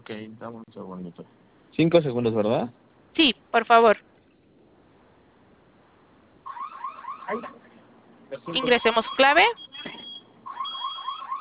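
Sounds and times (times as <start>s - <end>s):
speech: 0.1s - 4.1s, 7.3s - 7.6s, 8.3s - 9.6s
store general security alarm warbling electronic tones: 6.4s - 7.7s, 8.4s - 11.3s.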